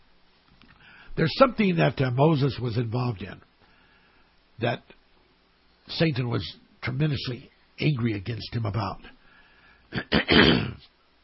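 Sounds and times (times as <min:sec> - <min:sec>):
speech: 0:01.2 - 0:03.5, 0:04.6 - 0:05.0, 0:05.9 - 0:09.2, 0:09.9 - 0:10.9
person clearing throat: 0:09.9 - 0:10.9.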